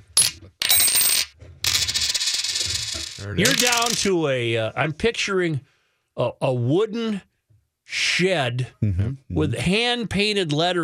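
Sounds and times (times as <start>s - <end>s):
coins spilling and clattering: 0.2s - 4.1s
speech: 3.2s - 7.3s, 7.9s - 10.8s.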